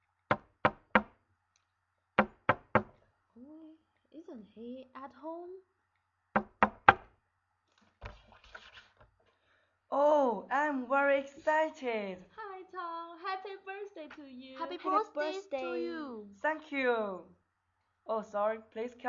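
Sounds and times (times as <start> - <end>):
firm knocks on the door of a home: 0.3 - 1.1, 2.2 - 3.0, 6.4 - 7.1
speech: 3.8 - 5.8, 9.9 - 17.4, 18.1 - 19.0.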